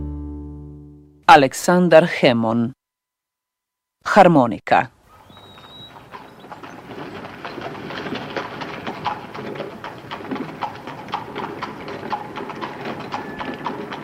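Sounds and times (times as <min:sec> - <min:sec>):
speech: 0:01.3 - 0:02.8, 0:04.1 - 0:04.9
horses trotting slowly pulling a bouncing carriage: 0:05.1 - 0:14.0.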